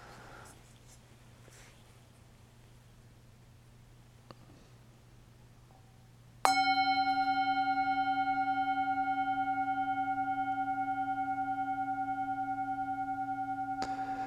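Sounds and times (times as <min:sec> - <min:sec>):
meditation bell ringing: 0:06.5 - 0:14.2.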